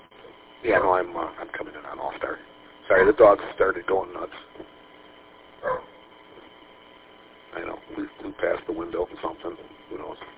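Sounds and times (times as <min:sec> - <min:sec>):
speech: 0:00.6 - 0:04.7, 0:08.0 - 0:10.3
dog barking: 0:05.6 - 0:06.0.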